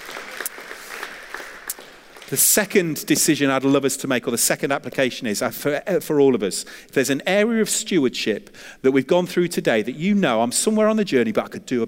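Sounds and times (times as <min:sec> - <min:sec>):
crowd applauding in a large room: 0:00.0 - 0:02.8
speech: 0:02.3 - 0:11.8.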